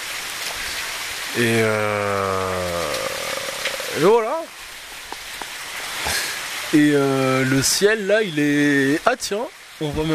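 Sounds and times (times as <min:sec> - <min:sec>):
distinct raindrops landing: 0:00.0 - 0:07.9
light rain pattering: 0:00.0 - 0:10.1
speech: 0:01.3 - 0:02.6, 0:03.9 - 0:04.4, 0:06.7 - 0:10.1.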